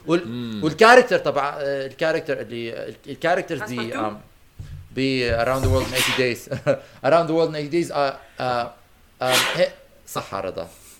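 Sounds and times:
speech: 0.1 - 4.3, 5.0 - 10.9
sneeze: 5.8 - 6.2, 9.2 - 9.7.

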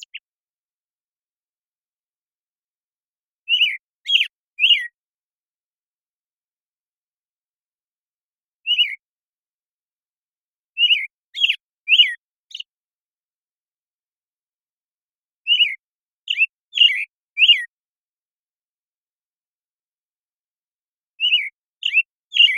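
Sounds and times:
American Robin morning song in Washington, United States: 0.0 - 0.3, 3.4 - 5.0, 8.6 - 9.1, 10.7 - 12.8, 15.4 - 17.8, 21.1 - 22.5.

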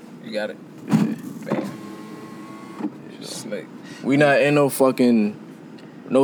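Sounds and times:
speech: 0.3 - 1.8, 3.2 - 5.4, 6.1 - 6.2
electric car window motor whirring: 0.8 - 3.5.

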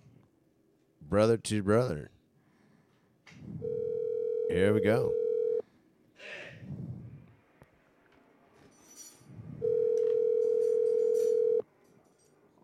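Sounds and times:
speech: 1.1 - 2.2, 4.5 - 5.2
soft breaths: 2.2 - 3.9, 5.6 - 7.5
ringback tone of an outgoing phone call: 3.6 - 5.6, 9.6 - 11.6.

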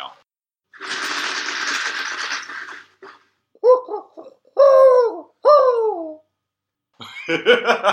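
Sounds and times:
owl hooting: 3.6 - 6.3
speech: 7.3 - 7.9.

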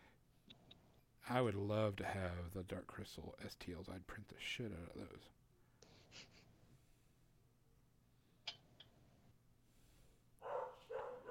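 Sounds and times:
speech: 1.3 - 5.4, 6.1 - 6.4
dog barking: 10.4 - 11.2.

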